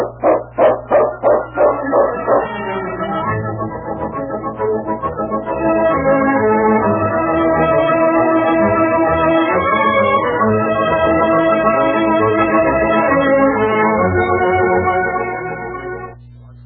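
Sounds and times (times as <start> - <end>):
dog barking in a radio drama: 0.0 - 2.6
orchestral music: 1.5 - 15.9.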